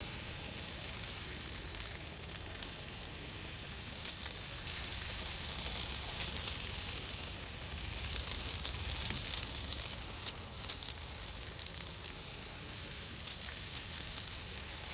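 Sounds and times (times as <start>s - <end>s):
small leaves rustling in the wind: 0.5s - 14.9s.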